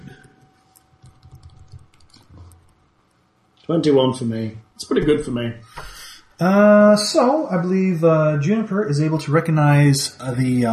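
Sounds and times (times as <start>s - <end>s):
faint typing on a computer keyboard: 0.7s - 2.8s
speech: 3.7s - 5.8s, 6.4s - 10.7s.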